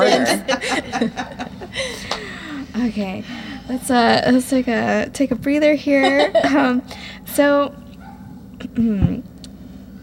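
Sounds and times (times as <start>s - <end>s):
laughter: 0.0s - 2.3s, 6.0s - 6.8s
low steady hum: 0.0s - 10.0s
speech: 0.1s - 1.4s, 3.0s - 7.8s, 8.8s - 9.3s
small dog barking in high-pitched yips: 8.0s - 8.4s.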